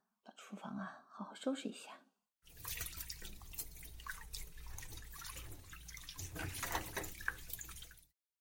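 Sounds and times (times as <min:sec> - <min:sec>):
speech: 0:00.3 - 0:02.0
running tap water splashing into a kitchen sink while washing dishes: 0:02.5 - 0:08.0.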